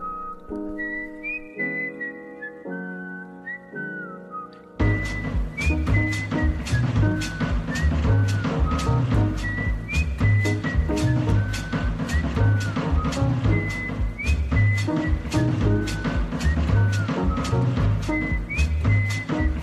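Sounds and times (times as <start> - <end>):
melodic whistled tune: 0.0 - 19.6
music with beat and percussion: 4.8 - 19.6.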